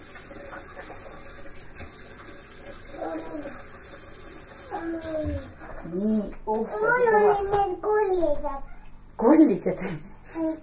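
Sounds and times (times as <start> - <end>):
water running from a tap: 0.0 - 5.6
speech: 5.9 - 10.6.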